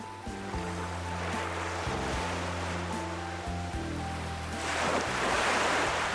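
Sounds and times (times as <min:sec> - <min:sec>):
ocean waves rolling onto a shore: 0:00.0 - 0:06.1.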